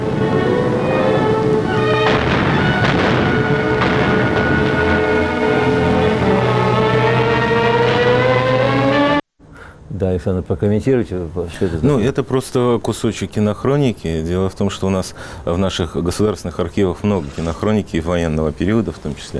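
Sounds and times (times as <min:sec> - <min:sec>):
loud droning rumble: 0:00.0 - 0:09.2
gunshots echoing through a mountain gorge: 0:02.0 - 0:06.4
speech: 0:10.2 - 0:19.3.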